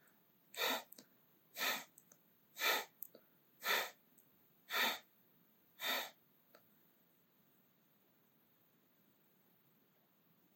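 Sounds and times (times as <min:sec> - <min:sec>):
person breathing heavily and agitatedly: 0:00.6 - 0:01.0, 0:01.6 - 0:02.0, 0:02.6 - 0:03.0, 0:03.6 - 0:04.0, 0:04.7 - 0:05.1, 0:05.8 - 0:06.2.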